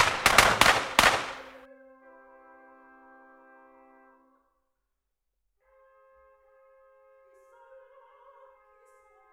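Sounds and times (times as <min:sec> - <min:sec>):
firing squad gunshot volley: 0:00.0 - 0:01.6.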